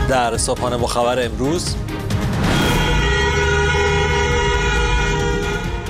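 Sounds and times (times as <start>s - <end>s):
speech: 0.1s - 1.9s
prolonged car horns honking in layered tones: 2.4s - 5.8s.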